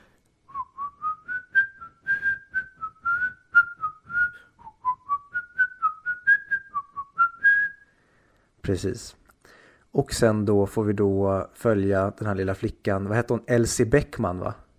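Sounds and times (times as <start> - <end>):
person whistling a short wavering melody: 0.5 - 8.0
speech: 8.7 - 9.2, 9.9 - 14.6.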